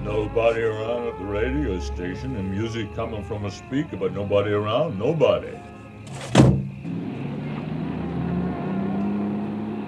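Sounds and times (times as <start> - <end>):
approaching car engine humming: 0.0 - 9.8
speech: 0.1 - 6.6
thump: 6.1 - 6.7.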